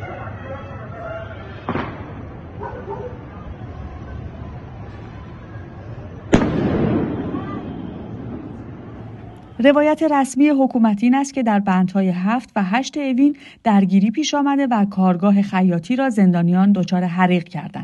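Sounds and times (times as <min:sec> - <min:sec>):
steady noise: 0:00.0 - 0:17.8
explosions after objects thrown at a prison: 0:01.7 - 0:02.4, 0:06.3 - 0:09.6
speech: 0:09.6 - 0:17.8.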